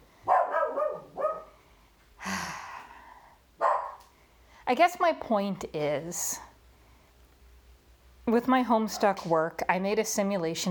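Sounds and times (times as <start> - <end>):
dogs barking at home: 0.2 - 1.6, 3.6 - 4.0
speech: 4.7 - 6.5, 8.3 - 10.7.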